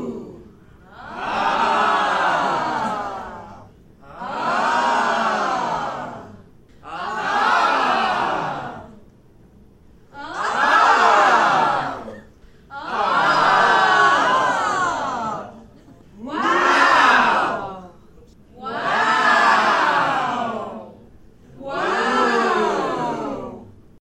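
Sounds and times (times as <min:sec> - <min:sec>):
group of people exclaiming: 0:01.0 - 0:08.9, 0:10.1 - 0:15.5, 0:16.2 - 0:17.8, 0:18.7 - 0:20.8, 0:21.6 - 0:23.7.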